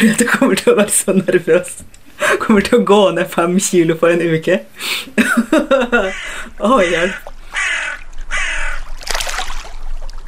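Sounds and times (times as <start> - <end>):
speech: 0.0 - 7.8
laughter: 5.2 - 7.1
crows cawing by Lake Mjøsa in Norway: 6.0 - 9.0.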